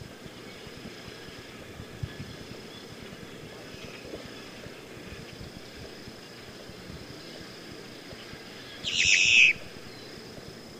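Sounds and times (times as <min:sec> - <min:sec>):
low steady background hiss: 0:00.0 - 0:10.7
boat-tailed grackle call: 0:08.8 - 0:09.7.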